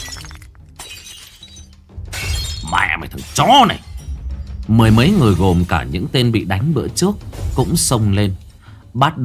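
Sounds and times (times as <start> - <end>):
ceramic bowl smashed against a man's head in a brawl: 0.0 - 4.1
speech: 2.7 - 3.9, 4.7 - 8.4, 9.0 - 9.2.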